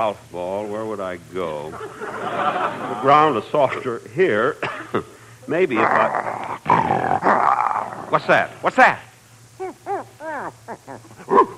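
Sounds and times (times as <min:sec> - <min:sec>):
speech: 0:00.0 - 0:07.5, 0:08.1 - 0:09.1
steady low hum: 0:00.0 - 0:11.5
laughter: 0:01.7 - 0:03.4
dog barking and yelping: 0:09.6 - 0:11.5.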